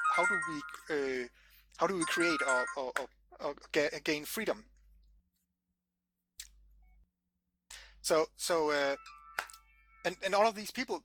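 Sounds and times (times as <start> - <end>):
mobile phone electronic ringtone: 0.0 - 1.2, 1.9 - 3.0, 8.8 - 10.3
speech: 0.2 - 4.7, 8.0 - 11.0.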